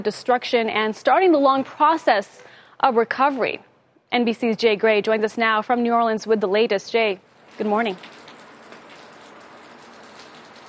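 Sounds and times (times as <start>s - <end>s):
speech: 0.0s - 8.2s
steady rain falling outdoors spattering on surfaces: 7.3s - 10.6s.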